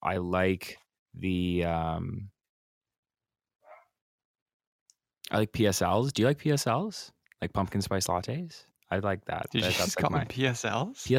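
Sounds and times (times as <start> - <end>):
speech: 0.1 - 2.3, 5.3 - 11.1
dog barking in the background: 3.6 - 4.0.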